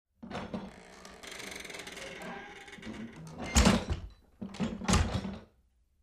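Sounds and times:
wooden door closing with creak: 0.2 - 5.5.

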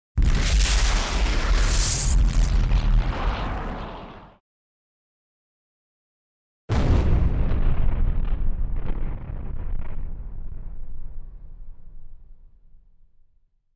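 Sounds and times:
energy blast explosions: 0.2 - 4.4, 6.7 - 11.1.

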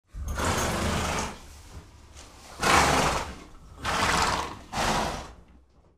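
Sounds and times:
horse snorting: 0.2 - 1.6, 2.4 - 5.6.

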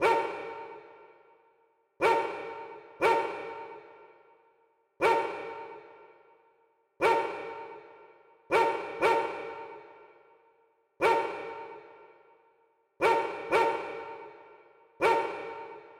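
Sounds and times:
dog barking in a big room: 0.0 - 0.5, 2.0 - 3.5, 5.0 - 5.5, 7.0 - 7.6, 8.5 - 9.8, 11.0 - 11.8, 13.0 - 14.2, 15.0 - 15.9.

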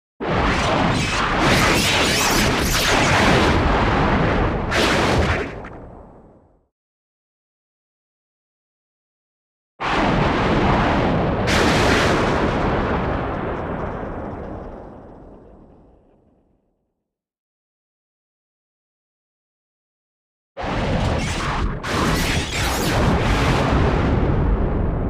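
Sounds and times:
energy blast explosions: 0.2 - 6.2, 9.8 - 15.9, 20.6 - 25.0.

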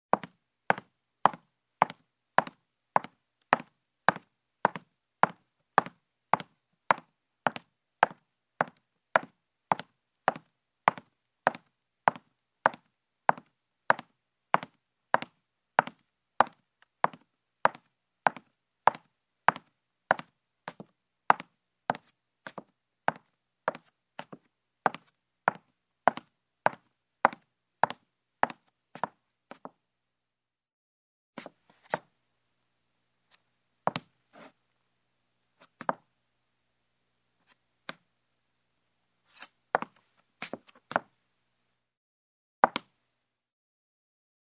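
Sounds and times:
heeled steps on wood floor: 0.2 - 29.8, 42.6 - 42.9.

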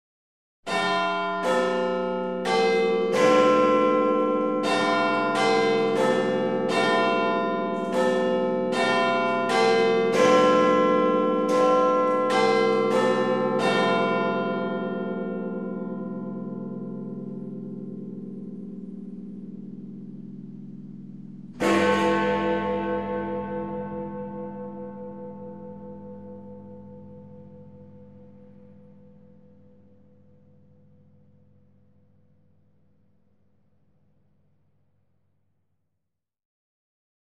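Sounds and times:
clock tower bell ringing at 1 p.m.: 0.7 - 17.6, 21.6 - 31.7.

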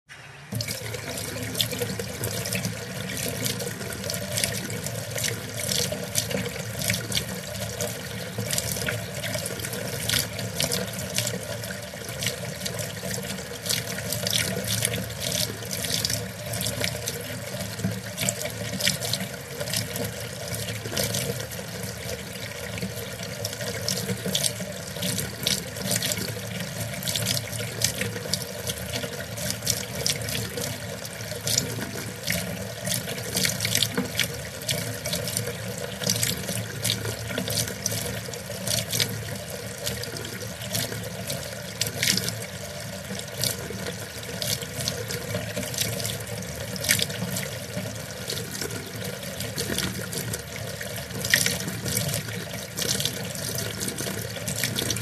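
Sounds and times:
water flowing into a bowl: 0.3 - 55.0.

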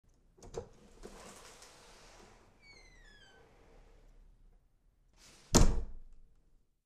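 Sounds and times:
wooden door opening and closing with creak: 0.4 - 4.0.

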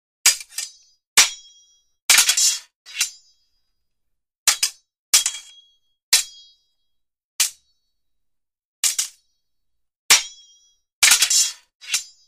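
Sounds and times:
two swords clashing, cold weapons: 0.3 - 3.4, 4.5 - 6.6, 7.4 - 7.7, 8.8 - 9.2, 10.1 - 12.2.

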